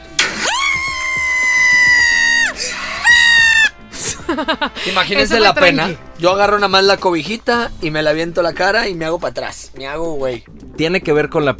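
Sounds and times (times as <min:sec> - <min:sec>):
piercing horror-movie scream: 0:00.1 - 0:03.8
laughter: 0:03.9 - 0:06.0
speech: 0:04.3 - 0:11.5.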